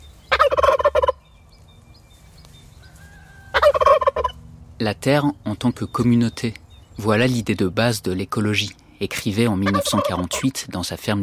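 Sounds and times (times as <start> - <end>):
low outdoor rumble: 0.0 - 11.2
flock of turkeys gobbling in an orchard: 0.3 - 1.2, 2.7 - 4.4, 8.6 - 10.6
speech: 4.8 - 11.2.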